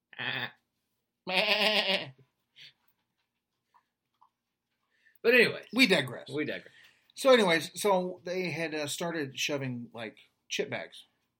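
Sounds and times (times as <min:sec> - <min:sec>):
person mimicking a sheep's bleat: 0:00.1 - 0:00.6, 0:01.3 - 0:02.2
speech: 0:05.3 - 0:11.1.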